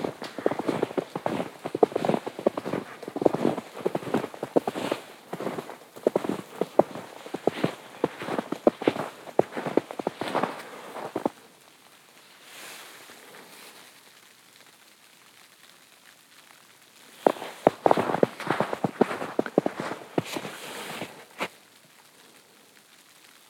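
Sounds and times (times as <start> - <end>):
footsteps crunching through fresh snow on a morning hike: 0.0 - 14.2, 17.0 - 21.7.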